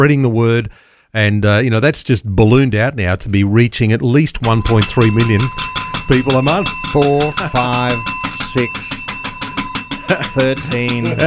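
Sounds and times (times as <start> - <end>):
speech: 0.0 - 9.0, 10.1 - 11.2
metallic bell ringing rapidly: 4.4 - 11.2.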